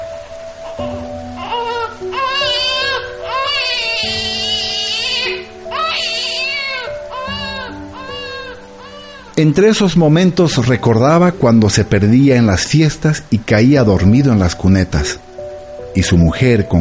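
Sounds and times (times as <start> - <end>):
child crying loudly: 0.6 - 9.4
speech: 9.4 - 15.3, 16.0 - 16.7.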